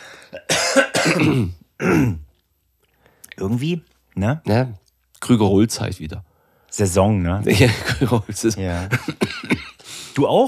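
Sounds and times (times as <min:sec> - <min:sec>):
speech: 0:00.3 - 0:02.2, 0:03.4 - 0:09.6, 0:10.2 - 0:10.4
person coughing: 0:00.3 - 0:02.3, 0:09.0 - 0:09.8
person clearing throat: 0:00.4 - 0:02.3, 0:09.1 - 0:09.8.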